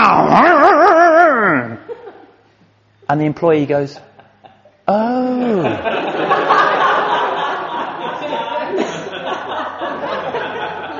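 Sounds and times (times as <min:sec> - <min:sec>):
voice imitating a chainsaw roaring to life after a hand pull-start: 0:00.0 - 0:01.8
speech: 0:03.1 - 0:04.1
laughter: 0:04.0 - 0:10.9.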